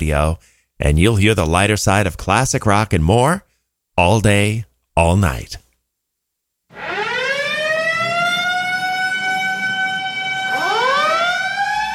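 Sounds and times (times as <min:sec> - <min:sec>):
speech: 0:00.0 - 0:05.6
siren wailing: 0:06.7 - 0:11.9.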